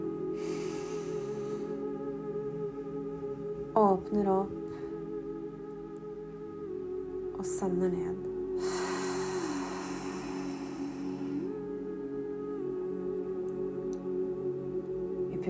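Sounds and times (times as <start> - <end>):
steady humming drone: 0.0 - 15.4
long deep exhale during a guided breathing exercise: 0.4 - 1.8, 8.6 - 11.6
speech: 3.8 - 4.6, 7.4 - 8.3.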